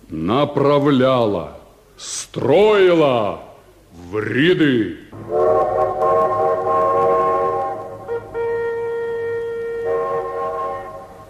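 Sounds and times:
speech: 0.1 - 6.2
low rumble of railway noise: 5.2 - 11.2
train whistle blowing at a small railway station: 5.2 - 11.2.

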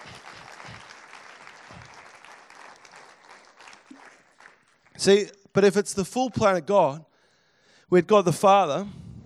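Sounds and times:
audience applause: 0.0 - 5.1
speech: 5.0 - 7.1, 7.9 - 9.0.

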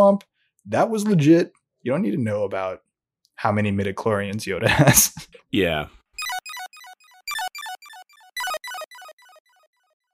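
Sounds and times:
speech: 0.0 - 2.8, 3.4 - 6.3
laughter: 4.6 - 5.4
bright electronic chime playing a short descending four-note run: 6.2 - 9.6.

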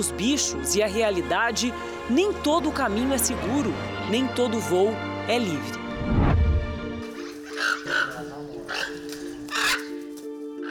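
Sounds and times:
speech: 0.0 - 6.2
macaw squawking: 7.1 - 10.6.

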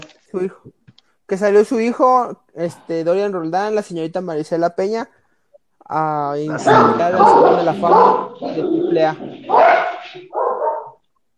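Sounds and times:
speech: 0.4 - 5.2, 5.9 - 10.4
dog barking indoors: 6.5 - 11.0.

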